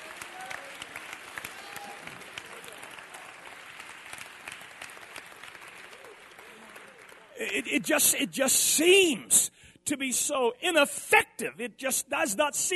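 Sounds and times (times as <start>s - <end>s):
crowd applauding with many hands clapping: 0.0s - 7.8s
speech: 7.4s - 12.7s.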